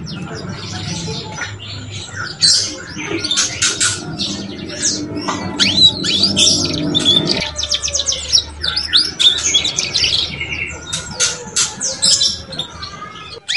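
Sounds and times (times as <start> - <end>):
Belgian canary song of chirps and trills: 0.0 - 13.5
faint low hum: 0.3 - 8.2.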